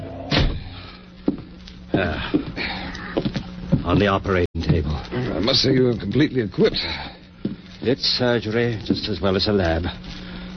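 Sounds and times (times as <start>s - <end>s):
faint hum: 0.0s - 10.5s
heavy door kicked shut: 0.2s - 0.7s
speech: 2.0s - 3.3s, 3.9s - 7.2s, 7.8s - 10.2s.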